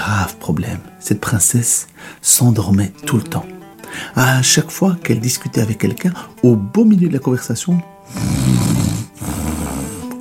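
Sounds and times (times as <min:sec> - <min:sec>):
speech: 0:00.1 - 0:09.5
deep rattling snores: 0:08.1 - 0:10.1.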